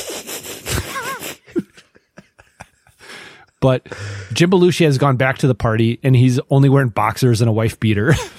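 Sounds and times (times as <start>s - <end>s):
voice imitating a gorilla's squeaky wheezing snicker: 0.4s - 2.9s
speech: 3.6s - 8.3s.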